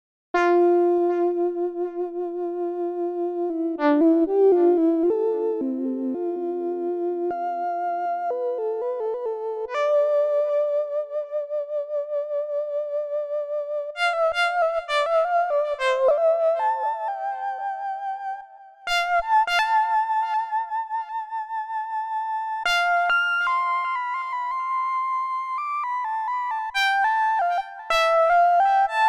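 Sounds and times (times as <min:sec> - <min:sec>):
analog synthesizer: 0:00.4 - 0:29.0.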